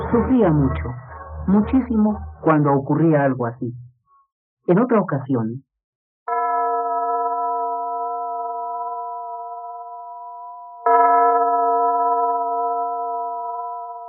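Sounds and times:
speech: 0.1s - 3.8s, 4.6s - 5.7s
small old church bells ringing in Bonn Germany: 6.3s - 14.0s.

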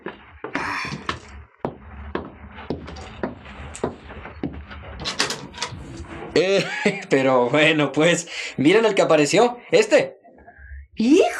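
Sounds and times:
door opening: 2.6s - 6.4s
laughter: 6.4s - 7.3s
speech: 6.4s - 10.2s, 11.0s - 11.3s.

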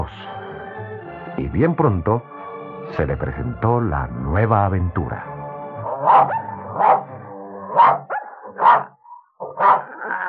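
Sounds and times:
speech: 1.4s - 2.3s, 2.9s - 5.3s, 6.0s - 6.9s
dog barking: 5.8s - 10.2s.

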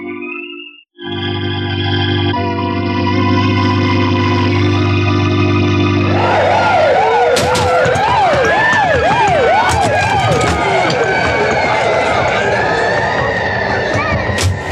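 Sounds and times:
police sirens wailing: 1.0s - 14.7s
dense rushing traffic and commotion: 6.0s - 14.7s.

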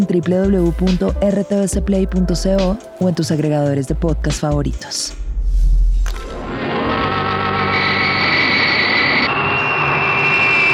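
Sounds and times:
speech: 0.0s - 5.2s
high sustained jet engine whine: 5.2s - 10.7s
jet aircraft climbing into a night sky: 6.1s - 10.7s.

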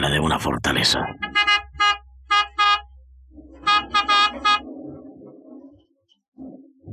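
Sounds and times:
rumbling mechanical noise: 0.0s - 6.9s
speech: 0.2s - 1.2s
low idling car engine: 0.7s - 6.9s
black car horn honking beside a steel gate in a Chinatown neighborhood: 1.2s - 4.8s.

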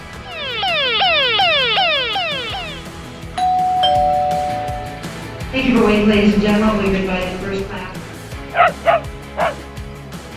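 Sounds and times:
rapid repeating falling alarm sweep: 0.0s - 5.2s
house doorbell ringing: 0.3s - 5.3s
steady airplane cabin chime tone: 0.3s - 7.9s
small dog barking: 8.5s - 9.6s.

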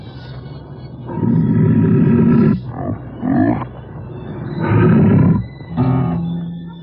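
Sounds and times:
large wild beast roaring in a dark dungeon: 1.1s - 3.6s, 4.6s - 6.3s.

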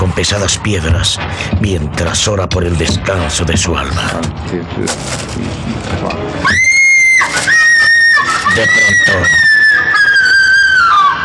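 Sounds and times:
speech: 0.2s - 7.5s, 8.6s - 9.5s
young woman's terrified anguished scream: 6.4s - 11.0s.

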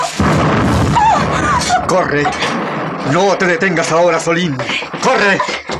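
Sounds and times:
deep boom: 0.2s - 3.6s
explosions inside a burning chalet: 0.2s - 4.4s
speech: 1.9s - 5.7s.

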